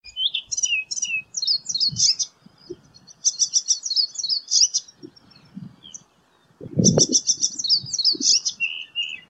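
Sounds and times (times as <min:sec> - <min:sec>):
birds: 0:00.0 - 0:09.2
icterine warbler: 0:00.1 - 0:09.2.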